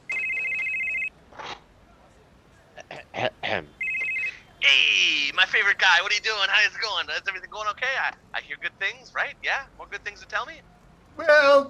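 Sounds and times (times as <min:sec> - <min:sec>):
telephone ringing during an outgoing call: 0:00.0 - 0:01.1, 0:03.8 - 0:06.4
speech: 0:03.5 - 0:03.8, 0:04.7 - 0:11.6.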